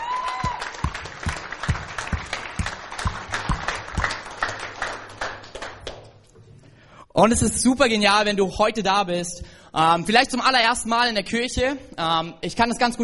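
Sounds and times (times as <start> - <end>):
audience applauding for the band: 0.0 - 6.2
speech: 7.2 - 13.0.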